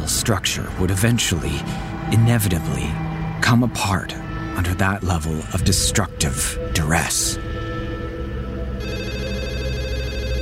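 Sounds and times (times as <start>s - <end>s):
speech: 0.2s - 7.5s
landline telephone ringing with an electronic trill: 8.8s - 10.4s.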